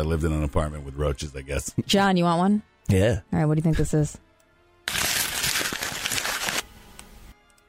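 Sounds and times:
speech: 0.0 - 4.2
paper crumpling as a rocket launch sound effect: 4.9 - 6.7.

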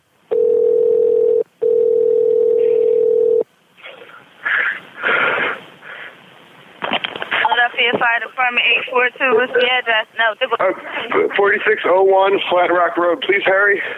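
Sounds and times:
steady telephone dial tone over the line: 0.3 - 3.4
breathy noise: 3.8 - 6.3
rustling: 3.8 - 9.6
speech: 8.2 - 13.9.

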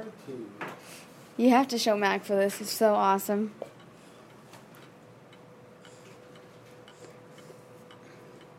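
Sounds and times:
speech: 0.1 - 3.7
small clock ticking: 2.6 - 8.5.

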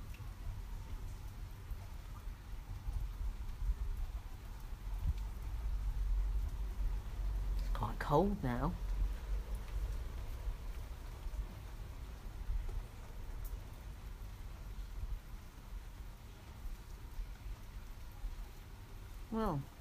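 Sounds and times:
light rain falling: 0.0 - 19.8
speech: 8.0 - 8.8.

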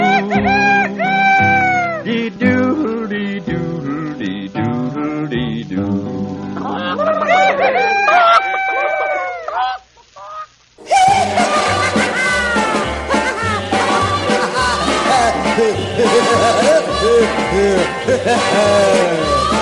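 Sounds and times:
rooster crowing cock-a-doodle-doo: 0.0 - 2.0, 6.7 - 15.1
busy music: 0.0 - 7.9, 10.8 - 19.6
laughter: 6.6 - 8.2, 10.8 - 19.5.

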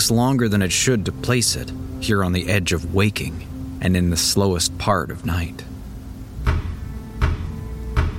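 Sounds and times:
speech: 0.0 - 5.7
faint steady hum: 0.0 - 8.1
knocking on an apartment door: 6.4 - 8.1.

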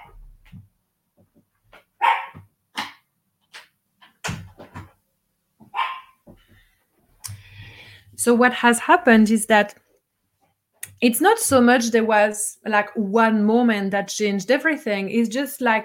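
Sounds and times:
excited dog barking at surrounding noise: 2.0 - 2.4, 5.7 - 6.2
speech: 8.2 - 9.8, 11.0 - 15.8.

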